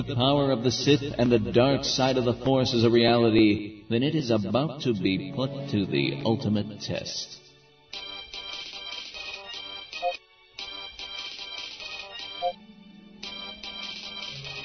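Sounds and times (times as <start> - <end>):
speech: 0.0 - 8.0
comlink ringing in trilling electronic bursts: 7.9 - 14.6.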